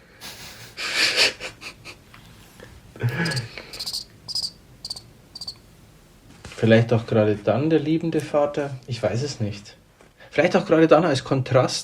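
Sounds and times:
breathy rustling bursts: 0:00.2 - 0:04.3
crickets chirping: 0:01.7 - 0:06.4
speech: 0:03.0 - 0:03.5, 0:06.6 - 0:09.8, 0:10.4 - 0:11.8.

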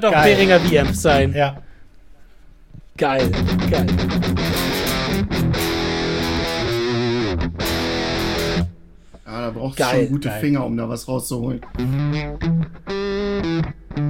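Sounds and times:
speech: 0:00.0 - 0:01.7, 0:03.0 - 0:05.4, 0:09.3 - 0:14.0
heavily distorted electric rhythm guitar chords on bridge pickup through digital multi-effect unit: 0:00.0 - 0:01.8, 0:03.2 - 0:09.2, 0:11.6 - 0:14.0.

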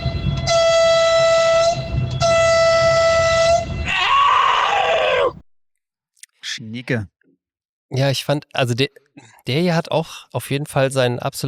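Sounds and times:
long loud horn blasts with a steady harmonic tone: 0:00.0 - 0:03.9
shorter shriller honk wavering in pitch: 0:00.0 - 0:04.4
speech: 0:06.7 - 0:07.2, 0:07.9 - 0:11.4.

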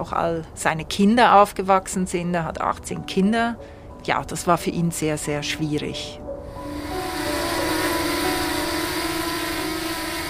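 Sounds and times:
speech: 0:00.0 - 0:06.2
broad noise: 0:00.0 - 0:06.6
drone humming overhead: 0:06.2 - 0:10.2.

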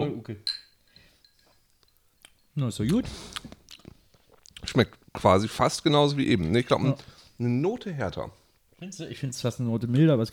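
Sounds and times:
speech: 0:00.0 - 0:00.6, 0:02.6 - 0:03.6, 0:04.6 - 0:10.3
glasses clinking together in a toast: 0:00.4 - 0:02.6.

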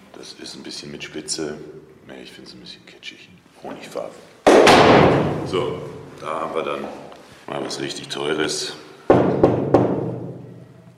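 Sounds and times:
speech: 0:00.2 - 0:08.8
knocks on an expensive olive wood coffin at an undertaker's: 0:09.1 - 0:10.4.

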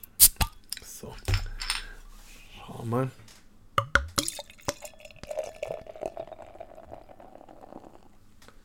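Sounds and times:
speech: 0:02.8 - 0:03.2
bottle of pale ale clinking and knocking as it is opened: 0:03.8 - 0:05.1
pale ale glugging and splashing into a glass: 0:04.2 - 0:08.2.

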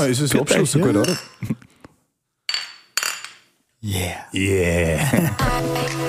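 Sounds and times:
speech: 0:00.0 - 0:01.6, 0:03.8 - 0:06.0
handled glassware clattering: 0:00.8 - 0:01.5, 0:02.5 - 0:03.5
beer glasses clinking in a toast: 0:00.9 - 0:01.4, 0:02.5 - 0:03.4.

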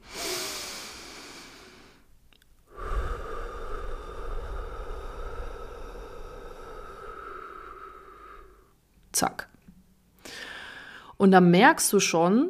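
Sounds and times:
slow deep breathing in and out: 0:00.0 - 0:08.8, 0:10.2 - 0:11.2
speech: 0:09.2 - 0:09.5, 0:11.2 - 0:12.4.

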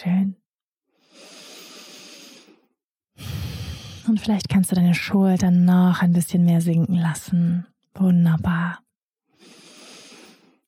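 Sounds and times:
speech: 0:00.0 - 0:00.4, 0:04.1 - 0:08.8
slow breathing during a guided mindfulness meditation: 0:00.9 - 0:04.1, 0:09.3 - 0:10.6.

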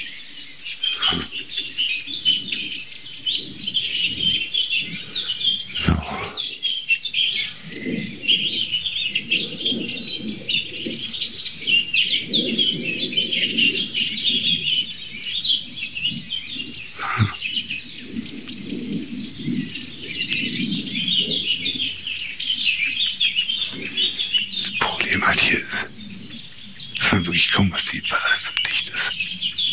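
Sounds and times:
agitated thrush calls in dense vegetation: 0:00.6 - 0:29.7
lower softer chuckling bird notes: 0:00.8 - 0:01.4, 0:05.0 - 0:06.5, 0:17.0 - 0:17.5
speech: 0:01.1 - 0:01.5.

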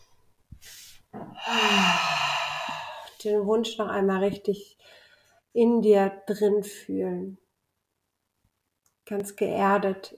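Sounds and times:
deep breath in and out during a guided relaxation exercise: 0:00.6 - 0:03.2, 0:04.8 - 0:05.4
low voiced sigh on the exhale: 0:01.2 - 0:03.2
speech: 0:03.2 - 0:07.4, 0:09.1 - 0:10.1.

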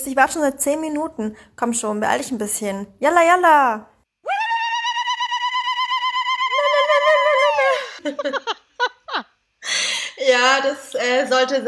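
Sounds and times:
speech: 0:00.0 - 0:03.9, 0:10.4 - 0:11.6
single voice ululating in a trilling festive cry: 0:04.2 - 0:08.2
laughter: 0:06.8 - 0:09.4.

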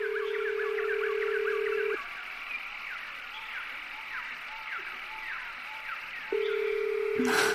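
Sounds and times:
phone ringback tone with no answer: 0:00.0 - 0:02.0, 0:06.3 - 0:07.5
birds chirping softly: 0:00.0 - 0:07.5.

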